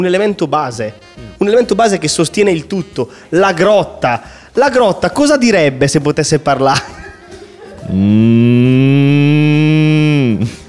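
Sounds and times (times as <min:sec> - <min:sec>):
speech: 0:00.0 - 0:07.0, 0:07.8 - 0:10.6
single loud sustained cow moo: 0:07.9 - 0:10.4.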